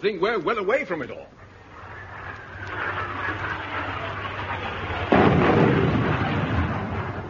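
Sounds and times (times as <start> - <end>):
speech: 0.0 - 1.4
low rumble: 1.4 - 7.2
artillery shell exploding during the shelling of an island: 2.5 - 7.2.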